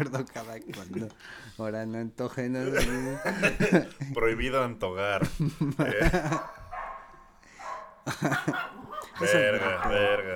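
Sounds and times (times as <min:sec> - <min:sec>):
speech: 0:00.0 - 0:06.6, 0:08.0 - 0:10.3
laughter: 0:02.6 - 0:06.8, 0:08.0 - 0:10.3
several dogs barking: 0:06.1 - 0:10.3.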